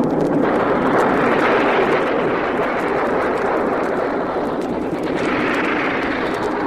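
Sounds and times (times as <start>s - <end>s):
burning stricken aircraft engine roaring while plunging from the sky: 0.0s - 6.6s.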